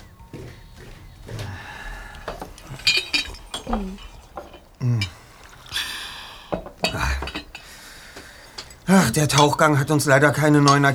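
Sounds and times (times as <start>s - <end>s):
cups and dishes clinking: 0.0s - 10.9s
soft voices murmuring: 0.0s - 10.9s
speech: 3.7s - 4.1s, 4.8s - 5.2s, 8.9s - 10.9s.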